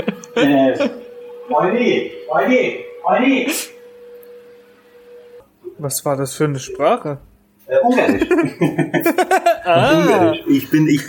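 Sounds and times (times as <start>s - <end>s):
laughter: 0.0s - 1.5s, 7.9s - 11.0s
speech: 0.0s - 3.8s, 5.8s - 11.0s
vacuum cleaner running in another room: 0.0s - 7.0s, 7.8s - 11.0s.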